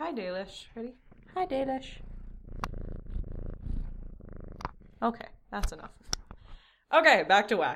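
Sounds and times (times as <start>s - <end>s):
cat purring into microphone: 0.0s - 6.6s
speech: 0.1s - 2.6s, 5.0s - 6.2s, 6.9s - 7.7s
sharp click: 5.6s - 6.5s.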